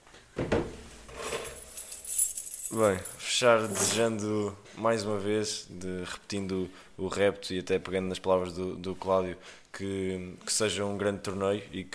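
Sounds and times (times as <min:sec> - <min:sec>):
bunch of keys jangling as they are handed over: 0:01.3 - 0:04.1
speech: 0:02.7 - 0:11.9.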